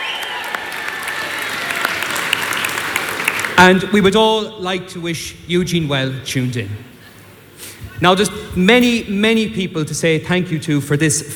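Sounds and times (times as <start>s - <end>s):
audience round of applause: 0.0s - 3.9s
speech: 3.6s - 6.9s, 8.0s - 11.3s.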